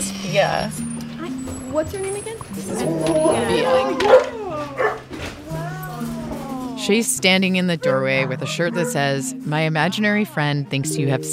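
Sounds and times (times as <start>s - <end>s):
speech: 0.3s - 4.3s, 6.8s - 11.3s
dogs barking, yipping and whimpering excitedly at a house doorway: 1.6s - 9.4s.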